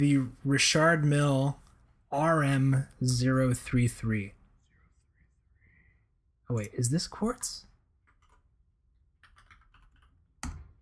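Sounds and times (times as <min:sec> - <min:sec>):
speech: 0:00.0 - 0:04.4, 0:06.5 - 0:07.7
typing on a computer keyboard: 0:08.0 - 0:08.5, 0:09.2 - 0:10.7.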